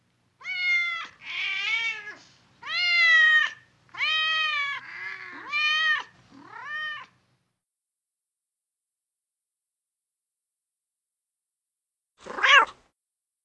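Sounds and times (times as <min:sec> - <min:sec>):
domestic cat meowing: 0:00.4 - 0:07.2, 0:12.3 - 0:12.8.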